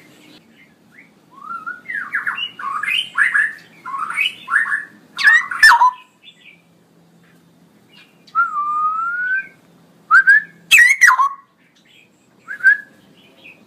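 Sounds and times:
male straw-headed bulbul singing loudly and energetically: 0:00.0 - 0:06.7, 0:07.8 - 0:13.6.

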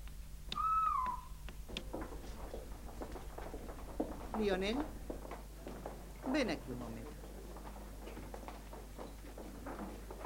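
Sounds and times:
low noise: 0:00.0 - 0:10.2
whistled imitation of a scops owl call: 0:00.5 - 0:01.4
speech: 0:04.4 - 0:05.0, 0:06.3 - 0:07.2.

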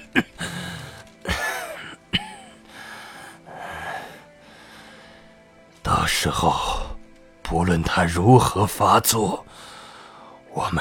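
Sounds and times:
speech: 0:00.1 - 0:00.5, 0:06.2 - 0:06.8, 0:07.5 - 0:09.7, 0:10.6 - 0:10.7
rasping wheezy breathing: 0:00.4 - 0:05.4, 0:09.5 - 0:10.4
person coughing: 0:01.3 - 0:02.6.

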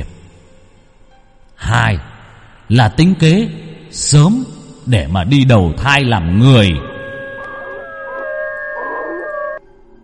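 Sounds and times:
speech: 0:02.7 - 0:06.9
pack of dogs howling: 0:07.1 - 0:09.6.

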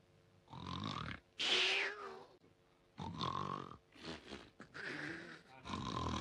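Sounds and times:
exaggerated theatrical snoring performed by a voice imitating a sleeper: 0:00.5 - 0:01.2, 0:03.0 - 0:06.1.

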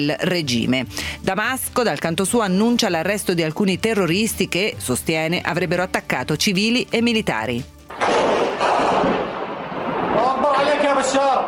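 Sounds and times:
speech: 0:00.0 - 0:08.1, 0:11.0 - 0:11.4
crowd chanting in Syria: 0:07.9 - 0:10.4
gunfire in Syria: 0:07.9 - 0:10.8.

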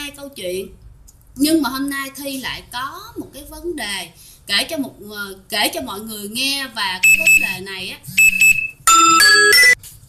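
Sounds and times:
speech: 0:00.1 - 0:00.8, 0:01.4 - 0:09.8
alarm clock electronic chime of three bright tones: 0:08.9 - 0:09.8.

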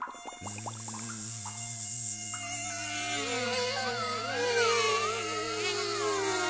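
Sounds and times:
giant mosquitoes flying and buzzing: 0:00.0 - 0:06.4.

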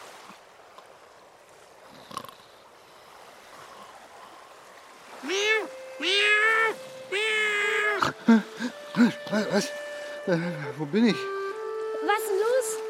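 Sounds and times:
faint watery background at sea: 0:00.0 - 0:12.8
cat meowing aboard a small boat at sea: 0:05.2 - 0:08.2
speech: 0:09.0 - 0:11.4.

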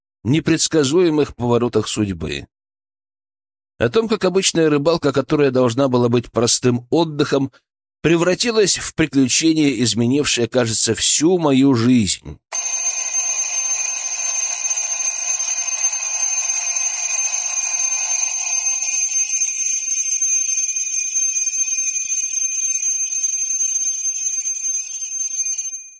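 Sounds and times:
speech: 0:00.2 - 0:02.6, 0:03.8 - 0:12.9
alarm clock ringing: 0:12.5 - 0:25.9.

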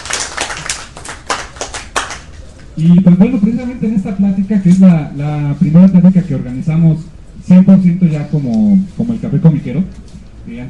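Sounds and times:
audience applause at a talk in a comics café: 0:00.0 - 0:02.4
speech: 0:02.8 - 0:10.6.

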